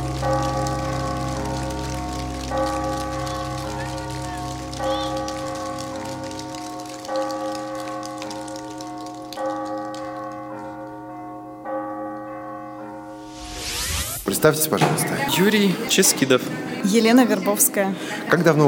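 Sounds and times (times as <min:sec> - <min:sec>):
church bells ringing: 0:00.0 - 0:18.3
hissy noise: 0:13.2 - 0:14.7
speech: 0:14.4 - 0:18.6.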